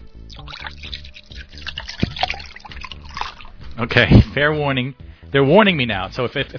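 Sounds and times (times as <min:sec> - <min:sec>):
clear liquid pouring from a bottle into a glass: 0:00.0 - 0:03.7
speech: 0:00.4 - 0:01.2, 0:03.8 - 0:06.5.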